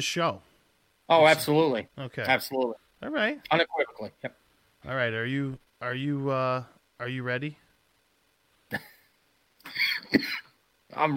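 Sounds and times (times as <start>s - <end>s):
speech: 0.0s - 0.5s, 1.1s - 7.6s, 10.1s - 11.1s
person coughing: 8.7s - 9.0s, 9.7s - 10.6s.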